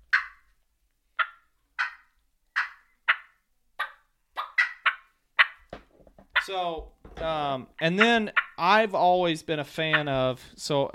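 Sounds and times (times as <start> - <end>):
wild turkey clucking: 0.0 - 0.5, 1.2 - 5.7, 6.3 - 6.7, 7.6 - 8.8, 9.8 - 10.3
speech: 6.5 - 10.9.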